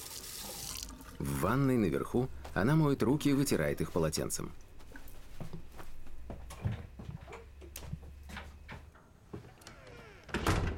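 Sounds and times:
speech: 1.4s - 4.6s
bathroom door closing: 9.4s - 10.7s.

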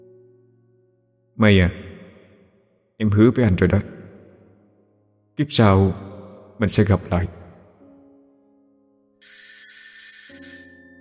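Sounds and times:
speech: 1.4s - 1.8s, 3.0s - 4.0s, 5.4s - 7.4s
alarm clock ringing: 9.2s - 11.0s.

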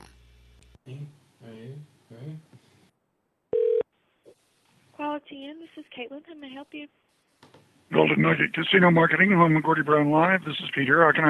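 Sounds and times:
telephone being dialed: 3.6s - 3.8s
speech: 5.8s - 7.2s, 7.9s - 11.2s.

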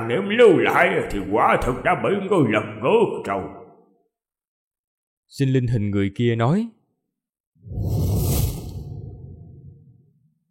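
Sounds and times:
speech: 0.1s - 3.6s, 5.3s - 6.8s
sword swung through the air: 7.7s - 10.1s.

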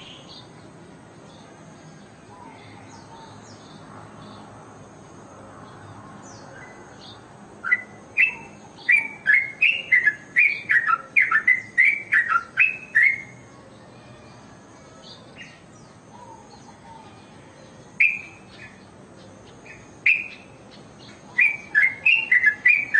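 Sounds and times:
Oriental magpie-robin song: 7.6s - 13.4s, 18.0s - 18.8s, 19.6s - 22.9s.

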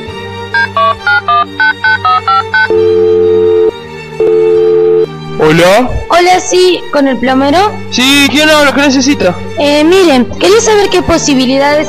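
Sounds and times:
telephone touch-tone dialing beeps: 0.6s - 5.1s
speech: 1.4s - 2.8s, 5.4s - 11.8s.

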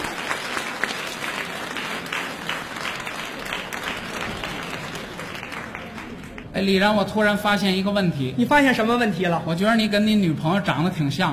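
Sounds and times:
audience applause at a stage comedy show: 0.0s - 6.5s
speech: 6.6s - 11.3s.

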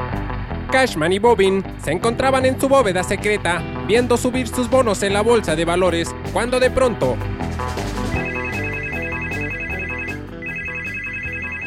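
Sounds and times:
speech: 0.2s - 7.8s
busy musical backing: 1.0s - 11.6s
telephone electronic ringtone: 8.1s - 11.6s.

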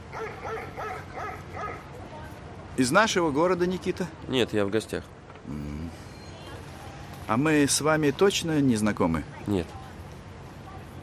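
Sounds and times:
dog barking along deserted streets past vegetable gardens and houses: 0.1s - 1.9s
speech: 2.8s - 6.0s, 7.3s - 9.8s.

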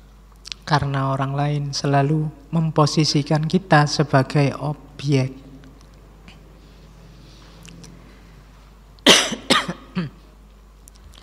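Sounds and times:
speech: 0.7s - 5.4s
person coughing deliberately in a lecture hall: 9.0s - 10.3s.

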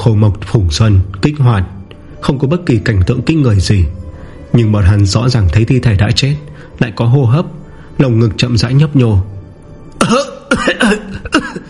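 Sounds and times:
speech: 0.0s - 9.3s, 10.0s - 11.4s
man reviving with dry hacking coughs: 10.0s - 11.6s.

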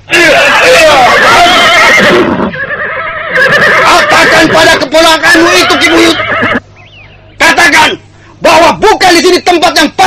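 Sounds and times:
horse neighing as riders mount: 0.2s - 6.6s
speech: 4.6s - 6.5s, 8.8s - 9.9s.

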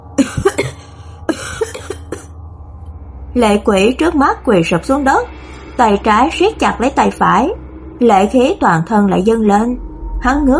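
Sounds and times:
young man dry coughing after having his throat released: 0.2s - 2.3s
speech: 3.4s - 10.5s.

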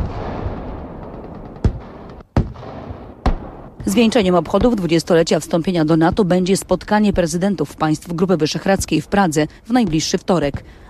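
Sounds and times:
artillery fire during a military exercise on a training range: 0.0s - 5.0s
speech: 3.8s - 10.8s.

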